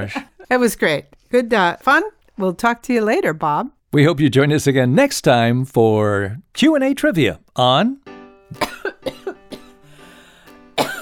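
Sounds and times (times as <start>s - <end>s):
speech: 0.0s - 9.2s
person coughing: 8.5s - 9.8s, 10.8s - 11.0s.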